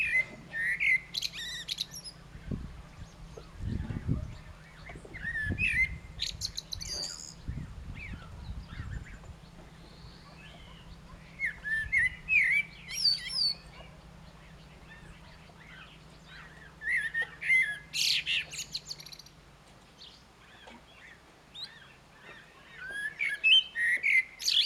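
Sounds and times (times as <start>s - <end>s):
common blackbird song, fluted whistled notes and high squeaky flourish: 0.0s - 19.4s
steady low rumbling background noise: 0.0s - 24.6s.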